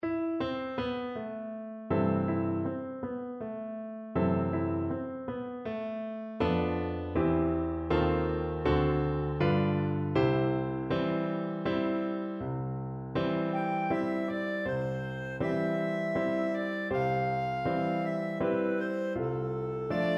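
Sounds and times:
piano: 0.0 - 20.1
clarinet: 13.4 - 20.1.

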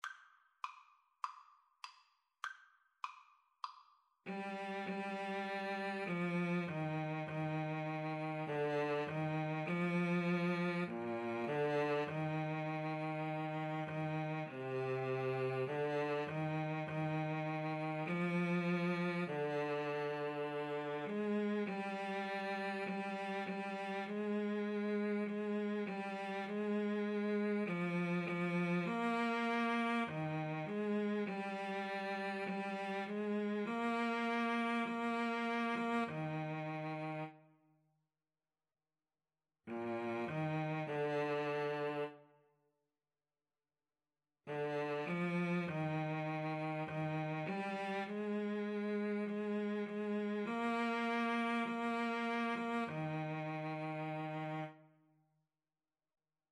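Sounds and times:
cello playing: 4.3 - 37.4, 39.7 - 42.2, 44.5 - 54.8.

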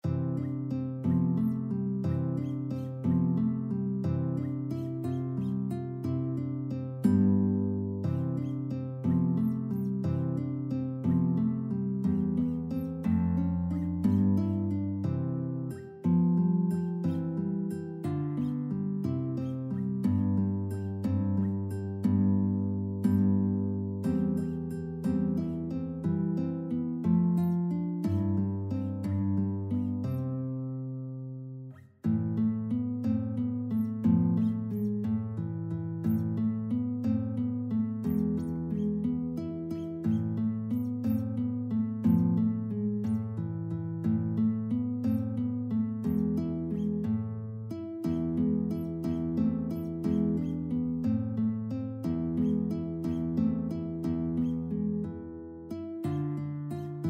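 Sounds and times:
guitar lullaby: 0.0 - 57.0.

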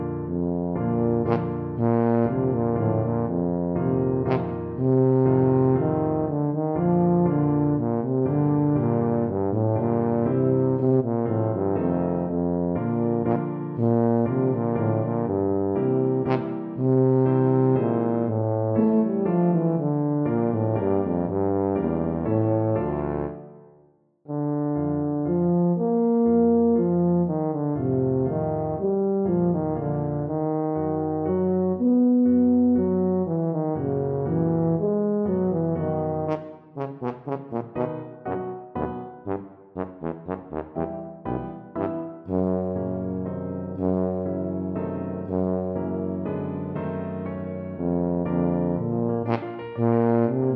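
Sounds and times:
tuba playing a classical piece: 0.2 - 23.7, 24.3 - 50.5.

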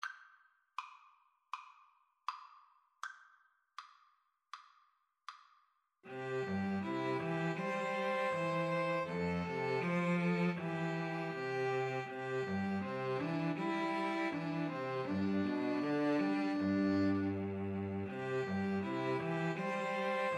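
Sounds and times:
string trio playing a farewell song: 6.1 - 20.3.

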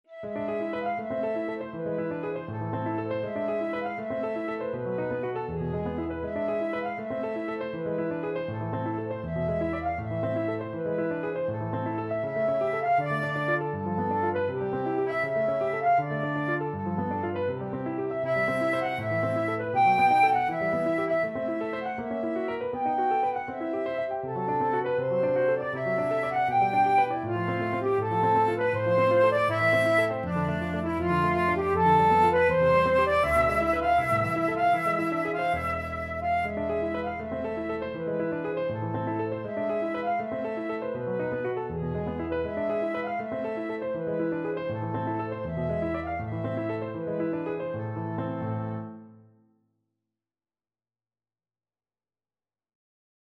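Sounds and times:
flute: 0.1 - 48.8.

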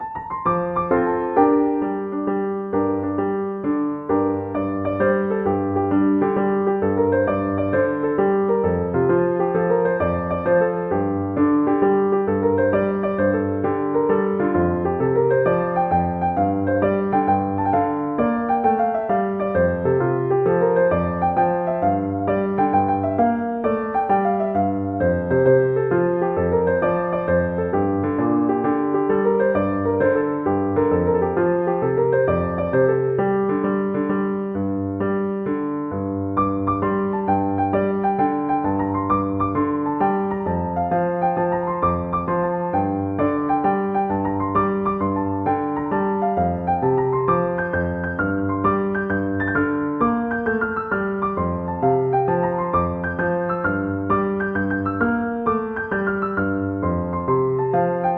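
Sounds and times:
piano: 0.0 - 58.1.

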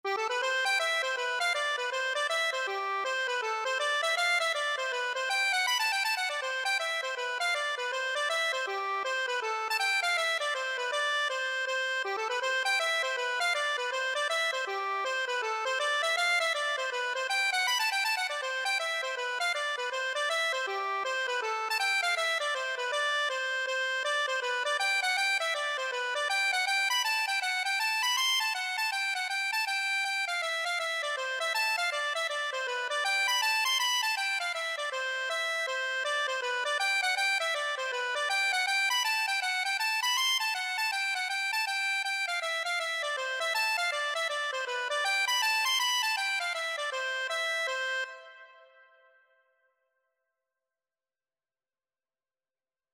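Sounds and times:
hornpipe tune on accordion: 0.1 - 49.0.

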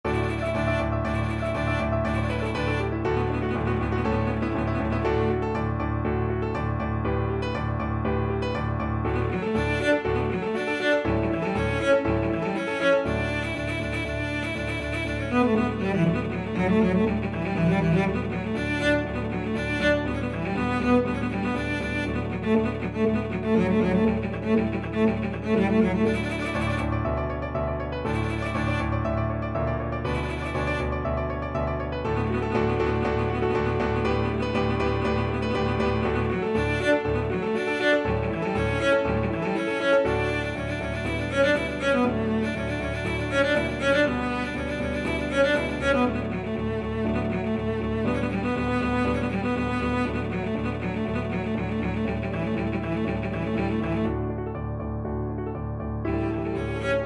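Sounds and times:
cello playing: 0.0 - 57.0.

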